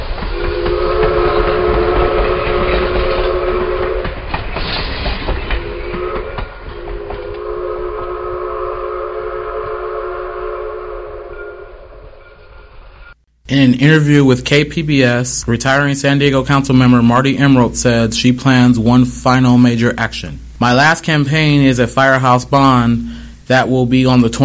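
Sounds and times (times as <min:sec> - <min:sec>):
train rumbling and clattering along the tracks: 0:00.0 - 0:13.2
train whistle blasts: 0:00.3 - 0:04.2, 0:05.5 - 0:12.3
speech: 0:13.6 - 0:24.4.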